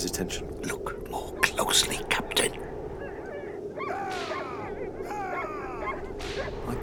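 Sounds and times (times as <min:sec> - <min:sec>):
speech: 0:00.0 - 0:02.6
steady rumble: 0:00.0 - 0:06.8
pack of sled dogs barking and yelping while pulling a laden sled: 0:02.6 - 0:06.8.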